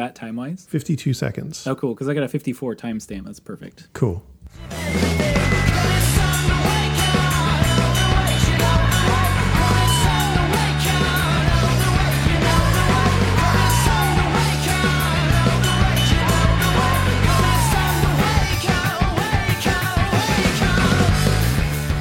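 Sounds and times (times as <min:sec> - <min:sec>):
speech: 0:00.0 - 0:05.3
loud dense rock song with distorted guitars and drums: 0:05.0 - 0:21.9.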